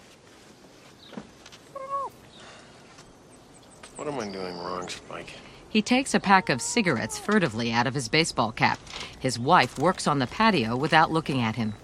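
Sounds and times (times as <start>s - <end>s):
speech: 4.1s - 11.8s
black and white cat meowing on an outdoor picnic table: 6.2s - 7.6s.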